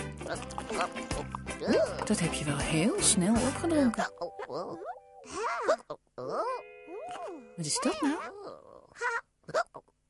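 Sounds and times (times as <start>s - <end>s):
speech: 0.3s - 9.2s
person hiccuping: 1.6s - 2.0s, 4.0s - 9.9s.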